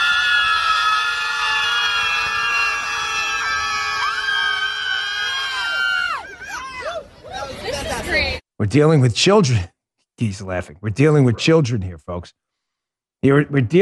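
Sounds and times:
crowd of protesters in New York screaming at the sky: 0.0s - 7.6s
speech: 8.7s - 12.4s, 13.2s - 13.8s.

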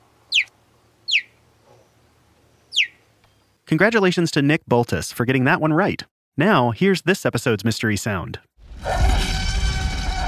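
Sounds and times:
cheetah chirping: 0.3s - 2.0s, 2.6s - 3.6s
speech: 3.7s - 9.2s.

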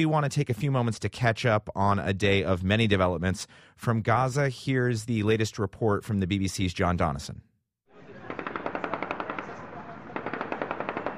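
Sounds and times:
speech: 0.0s - 7.5s
celebratory automatic gunfire: 8.1s - 11.1s.

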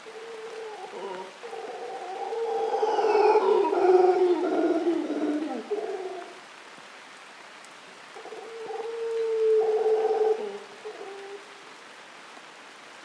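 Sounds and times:
golden-mantled howler monkey troop roaring in cloud forest treetops: 0.0s - 6.4s, 8.2s - 11.4s
rain falling in a cloud forest in Costa Rica: 0.0s - 13.0s.

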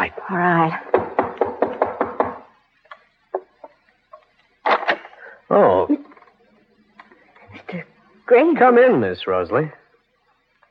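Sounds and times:
speech: 0.0s - 0.9s, 5.6s - 6.0s, 8.4s - 9.8s
sharp raps on a door: 0.8s - 2.5s.

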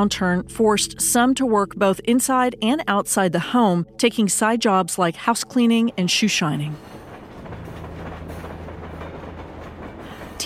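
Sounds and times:
speech: 0.0s - 7.0s
freight train rolling on tracks: 4.3s - 10.4s
freight train wheels clattering: 5.7s - 10.4s.

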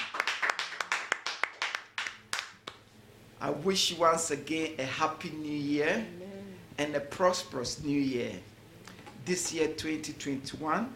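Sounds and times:
church service audience clapping in rhythm: 0.0s - 2.8s
speech: 3.4s - 6.2s, 6.8s - 8.5s, 9.3s - 10.9s.

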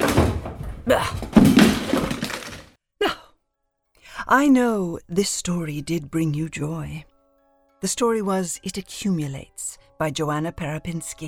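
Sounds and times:
drawer contents rattling: 0.0s - 2.7s
speech: 0.9s - 1.6s, 4.3s - 7.1s, 7.8s - 11.2s.

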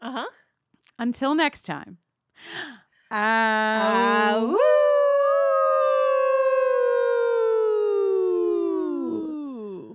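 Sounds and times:
speech: 1.0s - 4.8s
person howling like a wolf: 3.9s - 9.9s.

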